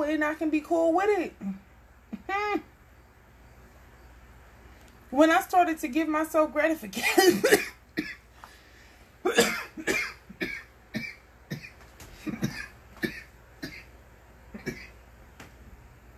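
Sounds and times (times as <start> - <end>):
speech: 0.1 - 1.6, 2.3 - 2.7, 5.1 - 8.1
harsh coughing fit: 7.0 - 8.2, 9.2 - 13.9, 14.5 - 15.0.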